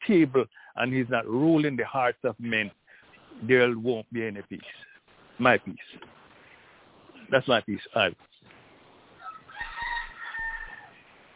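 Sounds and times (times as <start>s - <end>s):
speech: 0.1s - 2.8s, 3.4s - 6.1s, 7.3s - 8.3s
rooster crowing: 9.2s - 11.0s.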